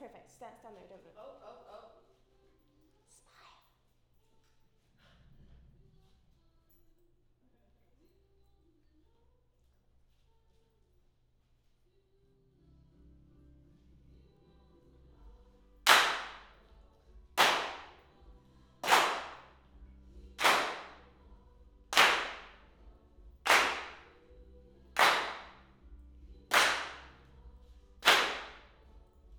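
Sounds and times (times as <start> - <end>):
hand claps in left channel: 15.9 - 16.6, 17.4 - 18.1, 18.8 - 19.5, 20.4 - 21.1, 21.9 - 22.7, 23.5 - 24.2, 25.0 - 25.6, 26.5 - 27.3, 28.0 - 28.8.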